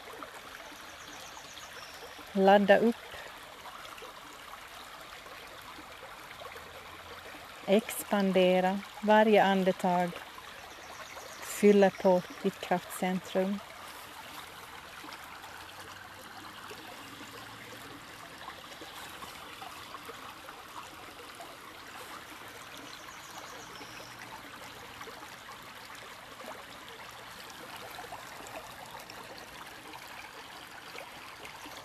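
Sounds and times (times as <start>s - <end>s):
river babbling and gurgling: 0.0s - 31.8s
speech: 2.4s - 3.1s, 7.7s - 10.2s, 11.6s - 13.7s.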